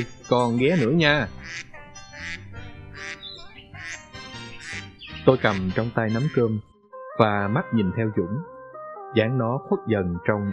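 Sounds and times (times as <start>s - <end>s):
speech: 0.0s - 2.4s, 5.2s - 8.5s, 9.1s - 10.5s
flock of ducks quacking: 0.0s - 5.9s.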